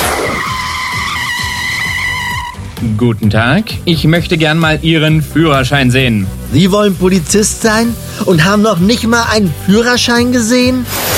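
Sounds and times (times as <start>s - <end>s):
car tires skidding and screeching while braking hard: 0.0s - 3.4s
speech: 2.8s - 11.1s.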